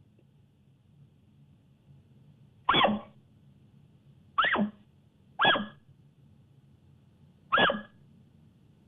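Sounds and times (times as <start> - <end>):
low hum: 0.0 - 8.8
elk alarm barks: 5.4 - 5.8, 7.5 - 7.9.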